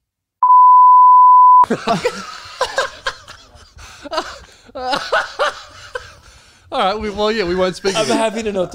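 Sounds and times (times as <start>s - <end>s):
censor bleep over speech: 0.4s - 1.6s
speech: 1.6s - 2.4s, 4.1s - 5.6s, 6.8s - 8.7s
several people laughing: 1.6s - 8.7s.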